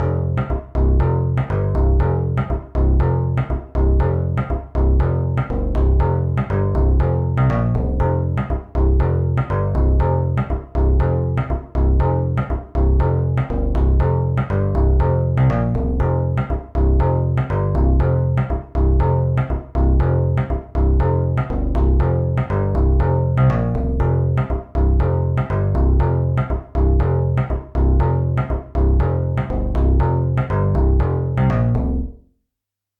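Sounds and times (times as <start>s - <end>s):
school bass: 0.0s - 32.3s.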